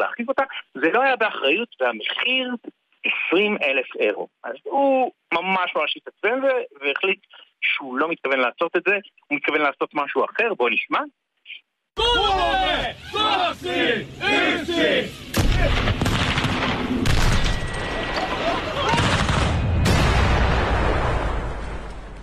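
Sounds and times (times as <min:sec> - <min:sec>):
speech: 0:00.0 - 0:16.2
people shouting: 0:12.0 - 0:16.0, 0:18.0 - 0:19.4
dynamite explosions blowing up a Tesla car on a snowy mountain: 0:15.2 - 0:18.2, 0:18.9 - 0:22.2
gunfire-like cracks: 0:15.3 - 0:17.7, 0:18.9 - 0:22.2.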